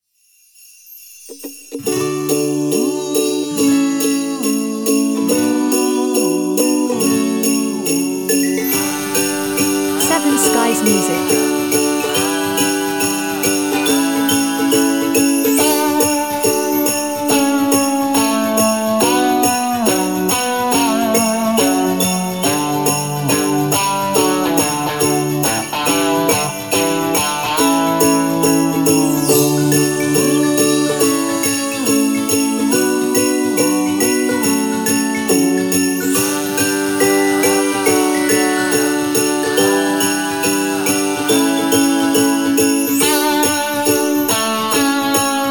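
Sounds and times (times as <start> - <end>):
ukulele playing Christmas music: 1.7 - 45.4.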